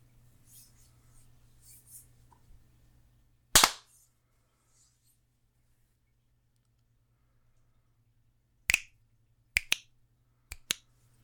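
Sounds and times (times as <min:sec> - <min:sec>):
hand claps for audio sync: 0:08.7 - 0:08.9, 0:09.6 - 0:09.8, 0:10.5 - 0:10.9.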